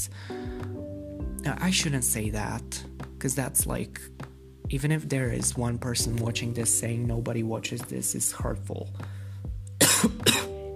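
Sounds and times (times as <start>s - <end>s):
speech: 1.4s - 9.2s, 10.0s - 10.4s
person coughing: 9.8s - 10.6s.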